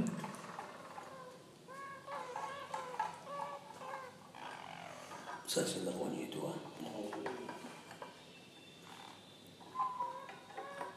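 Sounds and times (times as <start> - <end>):
Harz roller canaries singing: 0.0 - 10.9
speech: 5.5 - 7.7.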